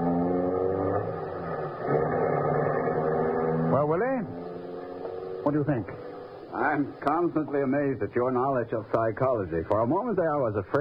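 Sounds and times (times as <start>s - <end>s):
car engine revving as car drives off: 0.0s - 7.4s
speech: 5.5s - 10.8s.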